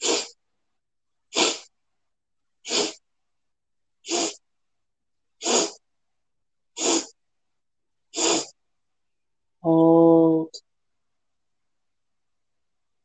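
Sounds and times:
short sharp sniffing inhalations through the nose in a breathing exercise: 0.0s - 0.4s, 1.3s - 1.7s, 2.6s - 3.0s, 4.0s - 4.4s, 5.4s - 5.8s, 6.8s - 7.2s, 8.1s - 8.6s
speech: 9.6s - 9.9s.

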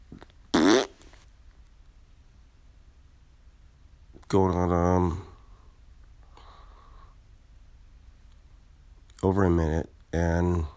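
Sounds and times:
short buzzy fart: 0.5s - 1.0s
speech: 4.3s - 5.3s, 9.2s - 10.7s.

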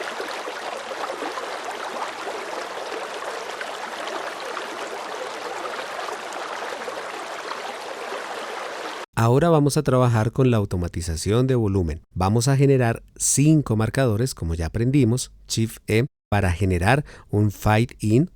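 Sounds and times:
river water flowing: 0.0s - 9.1s
speech: 9.2s - 18.3s.

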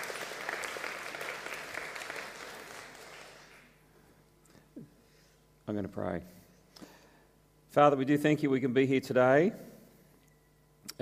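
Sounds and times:
crowd applauding: 0.0s - 3.8s
speech: 5.7s - 6.4s, 7.7s - 9.7s.

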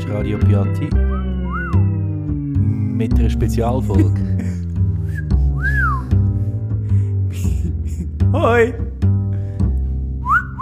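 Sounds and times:
steady music: 0.0s - 10.6s
speech: 0.1s - 1.3s, 3.0s - 4.5s, 8.3s - 8.9s
person whistling: 1.0s - 2.0s, 5.0s - 6.4s, 10.2s - 10.6s
person speaking a greeting: 2.6s - 4.3s, 8.3s - 8.9s.

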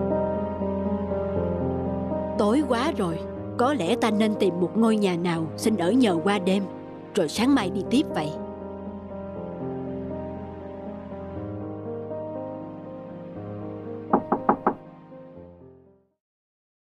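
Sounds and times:
soft music: 0.0s - 16.1s
speech: 2.4s - 8.4s
knocking on a door: 14.1s - 14.8s.

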